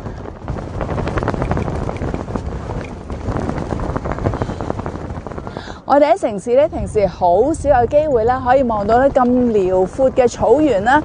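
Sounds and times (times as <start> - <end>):
wind blowing across open green grassland: 0.0 - 11.0
speech: 5.9 - 11.0.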